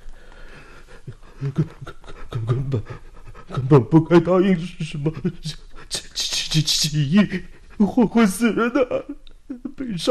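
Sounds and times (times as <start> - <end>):
man panting heavily catching his breath on a small path: 0.2 - 3.7
speech: 1.4 - 5.6, 6.5 - 9.2, 9.8 - 10.1.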